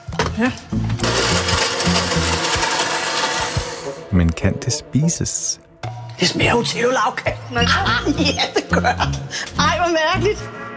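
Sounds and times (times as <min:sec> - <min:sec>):
speech: 0:00.4 - 0:00.8, 0:04.1 - 0:10.6
blender blending cake with chocolate milk: 0:00.7 - 0:04.1.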